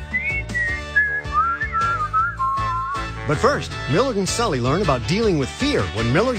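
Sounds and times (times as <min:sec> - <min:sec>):
bright warbling whistled melody of fictional creatures: 0:00.0 - 0:03.2
bouncy musical backing: 0:00.0 - 0:06.3
speech: 0:03.3 - 0:06.3.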